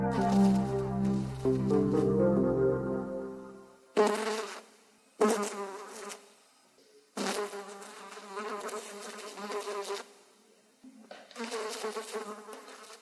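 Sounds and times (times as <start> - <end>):
fly buzzing: 0.1 - 2.4, 3.9 - 6.4, 7.2 - 10.2, 11.3 - 13.0.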